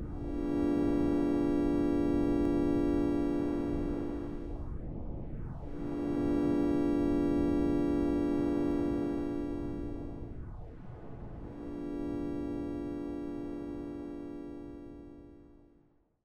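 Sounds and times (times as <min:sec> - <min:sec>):
spaceship engine failure: 0:00.1 - 0:04.6, 0:05.7 - 0:10.3, 0:11.5 - 0:15.4.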